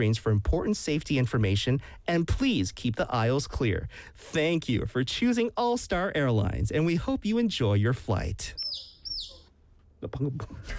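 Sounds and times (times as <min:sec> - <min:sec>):
speech: 0:00.0 - 0:08.9, 0:10.0 - 0:10.7
single high bird chirp inside an airplane cabin: 0:08.5 - 0:09.6.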